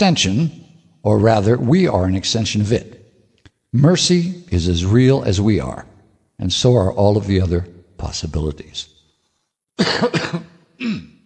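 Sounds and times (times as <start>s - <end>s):
speech: 0.0s - 3.0s, 3.7s - 8.9s, 9.8s - 11.1s
person clearing their throat in rough gravelly bursts: 9.8s - 11.2s.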